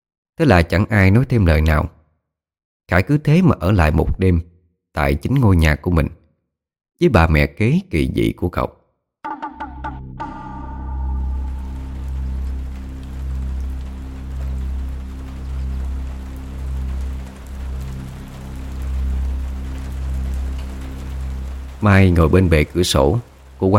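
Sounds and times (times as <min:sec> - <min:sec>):
speech: 0:00.4 - 0:02.0, 0:02.9 - 0:06.2, 0:07.0 - 0:08.8, 0:21.8 - 0:23.7
continuous low droning hum: 0:09.5 - 0:21.7
rain falling outside a quiet café in the afternoon: 0:10.9 - 0:23.7.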